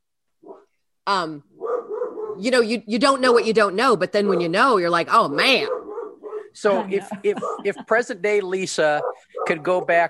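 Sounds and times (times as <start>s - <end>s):
dog barking: 0.4s - 0.7s, 1.6s - 2.5s, 4.2s - 4.8s, 5.5s - 6.7s, 7.3s - 7.8s, 8.8s - 9.9s
speech: 1.1s - 1.5s, 2.4s - 5.8s, 6.6s - 10.0s
laughter: 6.7s - 8.6s.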